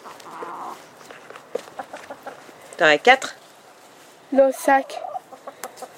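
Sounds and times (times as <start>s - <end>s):
faint rustling and steps: 0.0s - 4.6s
hens clucking in a garden: 0.0s - 5.9s
speech: 2.8s - 3.4s, 4.3s - 5.1s.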